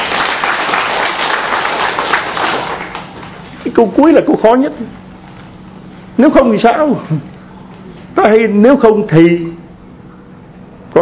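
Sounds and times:
audience applause at a religious talk: 0.0s - 3.5s
speech: 3.8s - 5.0s, 6.2s - 7.3s, 8.2s - 9.6s.

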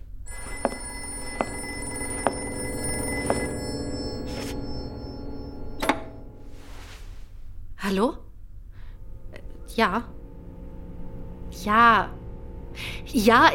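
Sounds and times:
telephone ringing: 0.3s - 6.6s
speech: 7.9s - 8.2s, 9.8s - 10.1s, 11.6s - 12.2s, 12.8s - 13.5s.

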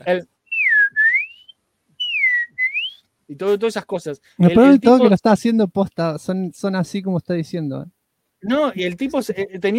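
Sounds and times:
speech: 0.0s - 0.3s, 3.3s - 9.7s
cheerful human whistling: 0.5s - 3.0s.

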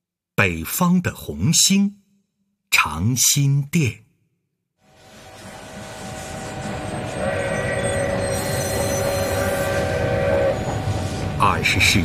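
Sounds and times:
speech: 0.4s - 2.0s, 2.8s - 4.0s, 11.6s - 12.0s
early twentieth-century train departing a railway station: 4.8s - 12.0s
train horn or whistle: 5.8s - 11.2s.

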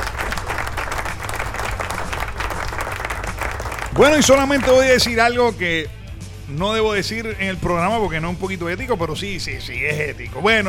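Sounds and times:
audience applause on cue: 0.0s - 4.8s
speech: 4.0s - 10.6s.

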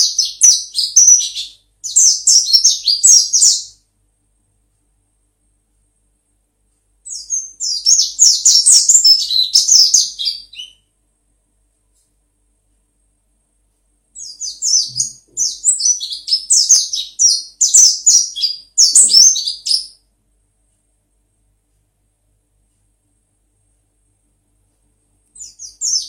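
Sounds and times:
white-eye twittering song with descending chirps: 0.0s - 3.8s, 7.0s - 10.9s, 14.2s - 20.0s, 25.3s - 26.0s.

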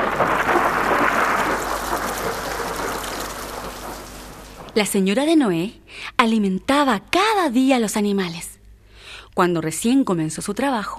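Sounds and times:
heavy rain: 0.0s - 5.0s
low rumble of thunder: 0.0s - 5.1s
speech: 4.8s - 8.5s, 9.4s - 10.9s.

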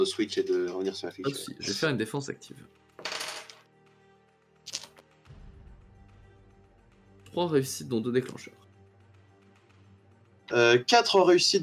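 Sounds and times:
speech: 0.0s - 2.8s, 7.4s - 8.6s, 10.5s - 11.6s
six dice clattering in a tabletop role-playing game session: 3.0s - 3.7s, 4.7s - 5.0s.

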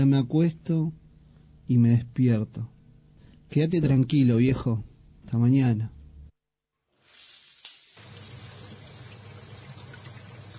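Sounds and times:
speech: 0.0s - 1.0s, 1.7s - 2.7s, 3.5s - 6.0s
shower water running: 6.9s - 10.5s.

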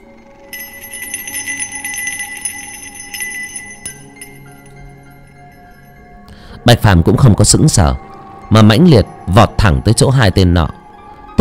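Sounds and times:
small bells hanging at someone's waist jingling: 0.0s - 6.2s
speech: 6.6s - 10.8s.

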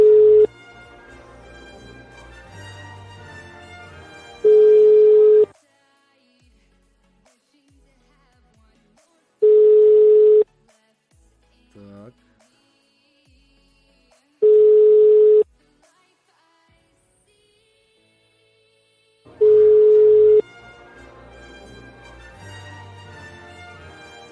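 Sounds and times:
telephone ringing tone after dialing a number: 0.0s - 0.5s, 4.4s - 5.5s, 9.4s - 10.4s, 14.4s - 15.4s, 19.4s - 20.4s.

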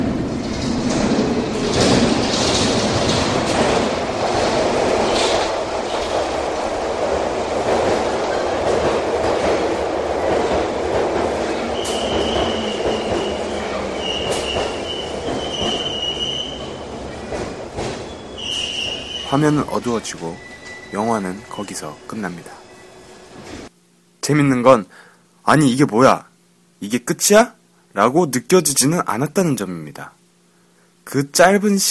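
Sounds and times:
subway train wheels rattling: 0.0s - 19.2s
subway train rumbling out of a dark tunnel: 0.0s - 23.7s
high metallic subway train wheel squeals: 11.8s - 16.6s, 18.1s - 19.5s, 20.2s - 23.2s
speech: 19.3s - 22.6s, 24.3s - 30.2s, 31.1s - 31.8s.

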